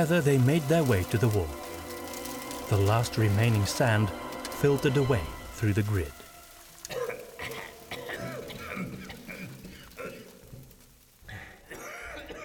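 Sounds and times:
speech: 0.0 - 1.7, 2.7 - 6.2
several people coughing in darkness: 6.9 - 10.4, 11.4 - 12.4
several people breathing hard in darkness: 11.3 - 11.7.

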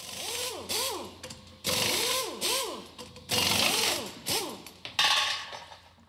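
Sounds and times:
compressor-driven pneumatic tool whining in short bursts: 0.0 - 4.8.

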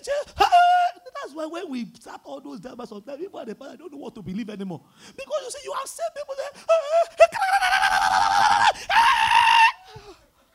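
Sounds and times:
speech: 1.4 - 7.1
shrill screams: 6.8 - 10.0
short faint cry: 6.8 - 10.2.

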